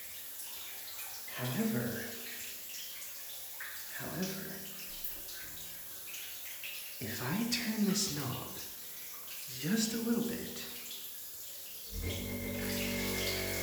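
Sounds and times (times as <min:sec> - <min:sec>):
speech: 0:01.4 - 0:02.2, 0:07.1 - 0:08.7, 0:09.5 - 0:10.6
water rushing through a stick attachment: 0:11.9 - 0:13.6.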